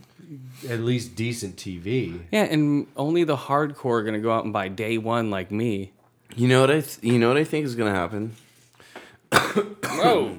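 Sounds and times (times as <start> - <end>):
speech: 0.3 - 8.4, 9.3 - 10.3
person coughing into a microphone: 9.3 - 10.3.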